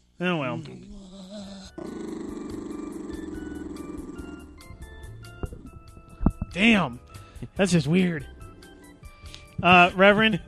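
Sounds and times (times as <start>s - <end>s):
speech: 0.2s - 1.0s, 6.6s - 8.3s, 9.6s - 10.4s
happy dog low rumbling purring growl: 0.6s - 6.5s, 7.7s - 9.9s.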